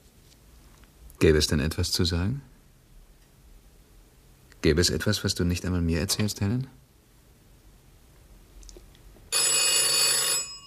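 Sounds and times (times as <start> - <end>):
speech: 1.2 - 2.5, 4.6 - 6.8
telephone bell ringing: 9.3 - 10.6.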